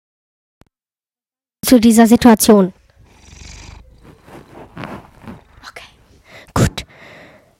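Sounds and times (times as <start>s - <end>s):
speech: 1.6s - 2.8s
cat purring softly: 2.7s - 7.0s
faint breathy rustles: 2.8s - 7.5s.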